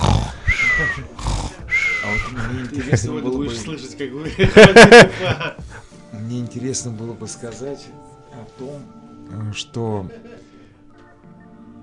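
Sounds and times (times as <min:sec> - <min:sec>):
person snoring over a phone line: 0:00.0 - 0:02.0
voiced murmuring: 0:00.0 - 0:03.4
laughter: 0:02.1 - 0:05.8, 0:10.0 - 0:10.7
speech: 0:02.3 - 0:05.6, 0:06.2 - 0:10.4.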